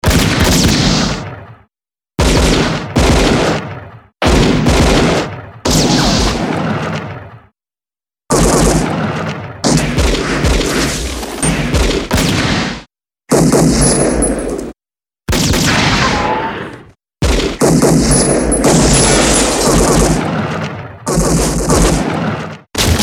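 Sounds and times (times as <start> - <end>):
gunshot sequence: 0.0 - 7.5, 8.3 - 23.0.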